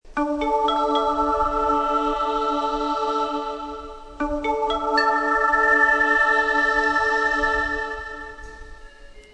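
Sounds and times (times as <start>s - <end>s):
train station departure melody: 0.1s - 9.3s.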